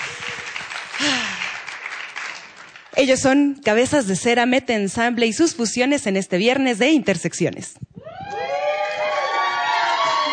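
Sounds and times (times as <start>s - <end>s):
audience applause at a live concert: 0.0s - 3.0s, 8.8s - 10.3s
speech: 3.0s - 7.9s.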